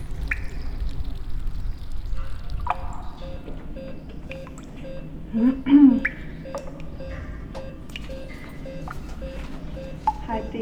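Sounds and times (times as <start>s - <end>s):
low rumble of running water from a hospital cooling installation: 0.0s - 5.0s
water dripping in a hospital cooling tank: 0.0s - 10.5s
speech: 5.4s - 6.0s.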